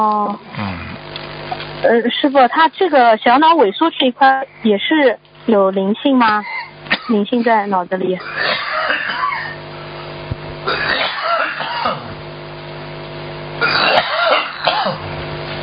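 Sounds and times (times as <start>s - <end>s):
speech: 0.0s - 0.7s, 1.8s - 6.5s, 7.1s - 8.5s
harsh coughing and throat clearing: 0.5s - 1.1s, 6.4s - 7.6s, 8.2s - 9.7s, 10.6s - 12.2s, 13.6s - 15.2s.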